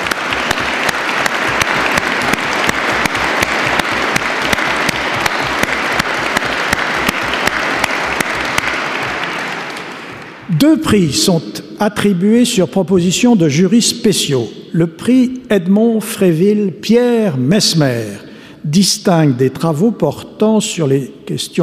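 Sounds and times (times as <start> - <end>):
large audience applauding at an award ceremony: 0.0 - 10.5
speech: 10.7 - 21.6.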